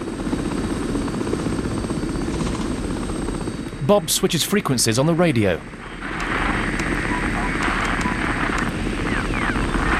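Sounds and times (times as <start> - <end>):
helicopter flying: 0.0 - 9.9
speech: 3.9 - 5.8.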